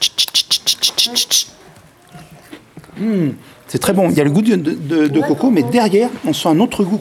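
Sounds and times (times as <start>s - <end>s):
person imitating cricket chirps: 0.0s - 1.6s
faint noise: 0.0s - 6.9s
speech: 1.1s - 6.9s.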